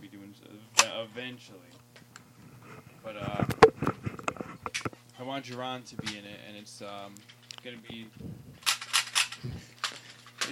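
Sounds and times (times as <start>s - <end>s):
speech: 1.0s - 1.9s, 3.0s - 3.9s, 5.2s - 8.4s
toy guns clicking as they are cocked: 8.6s - 10.5s.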